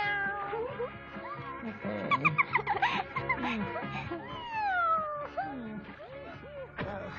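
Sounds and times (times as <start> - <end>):
cat meowing: 0.0 - 1.4, 4.3 - 5.4
laughter: 1.3 - 4.6, 5.3 - 6.8.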